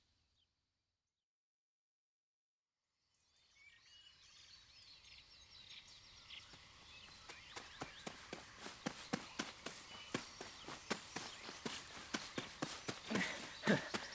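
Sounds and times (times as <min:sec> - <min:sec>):
running footsteps in a forest: 0:06.4 - 0:14.1.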